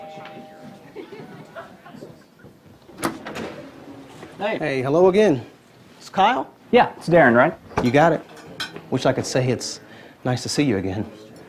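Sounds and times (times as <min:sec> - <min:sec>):
low indistinct murmur of room noise: 0:00.0 - 0:11.4
laughter: 0:00.8 - 0:02.4
door opening with a latch clack: 0:02.9 - 0:04.3
speech: 0:04.4 - 0:05.5, 0:06.1 - 0:08.3, 0:08.9 - 0:11.2.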